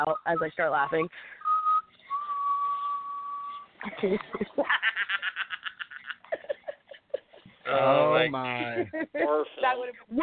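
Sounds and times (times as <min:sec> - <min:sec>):
speech: 0:00.0 - 0:01.4, 0:03.8 - 0:05.4, 0:07.7 - 0:10.2
person whistling a slow gentle tune: 0:00.0 - 0:03.7
laughter: 0:03.8 - 0:09.5.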